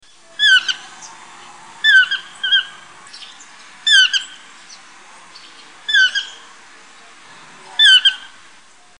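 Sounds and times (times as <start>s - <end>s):
chestnut-mandibled toucan yelping calls: 0.1s - 1.2s, 1.8s - 6.5s, 7.7s - 8.4s.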